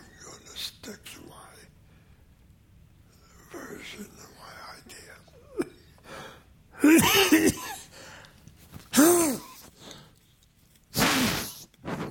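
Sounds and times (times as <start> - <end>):
speech: 0.8 - 1.1
person sneezing: 6.8 - 7.9, 8.8 - 9.8, 10.9 - 12.0.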